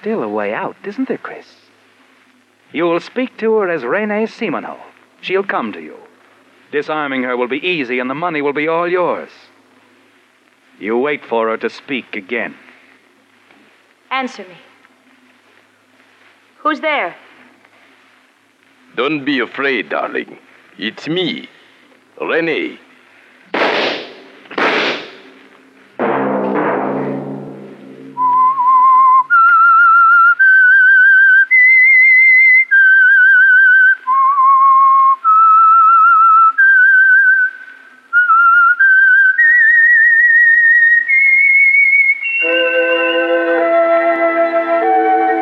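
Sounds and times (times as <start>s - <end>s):
speech: 0.0s - 1.7s, 2.7s - 6.1s, 6.7s - 9.5s, 10.8s - 12.6s, 14.1s - 14.7s, 16.6s - 17.2s, 19.0s - 21.6s, 22.2s - 22.8s
sharp percussive hits: 23.5s - 25.4s, 26.0s - 28.3s
whistled theme melody of a Sunday night program: 28.2s - 37.6s, 38.2s - 45.3s
sustained musical chord: 42.4s - 45.3s.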